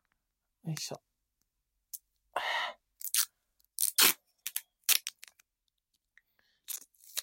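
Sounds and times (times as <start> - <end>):
speech: 0.6 - 1.1
adhesive tape being pulled and pressed down to fix a vibrator to the body: 3.0 - 5.4.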